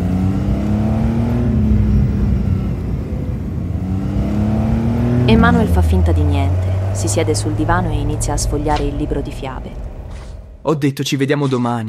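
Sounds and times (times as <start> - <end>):
sports car engine revving and driving off: 0.0 - 10.7
speech: 5.3 - 9.9, 10.6 - 11.8.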